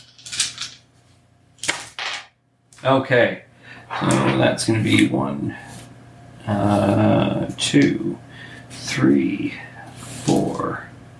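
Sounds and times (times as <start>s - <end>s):
large handful of plastic dice rolled during a tabletop game: 0.0s - 0.8s
speech: 2.8s - 5.7s, 6.5s - 8.2s, 9.0s - 9.7s.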